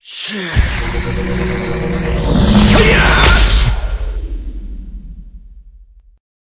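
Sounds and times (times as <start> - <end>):
monster attack: 0.4 - 4.8.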